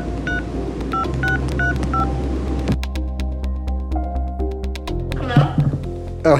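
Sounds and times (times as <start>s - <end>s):
music bed: 0.0s - 6.3s
touch-tone dialing beeps for a phone call: 0.3s - 2.1s.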